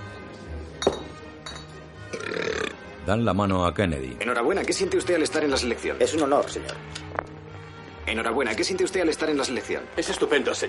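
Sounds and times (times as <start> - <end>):
sharp glass clinks: 0.8 - 1.8
loud rumbling burp after drinking soda: 2.0 - 2.9
speech: 3.1 - 7.0, 8.1 - 10.6.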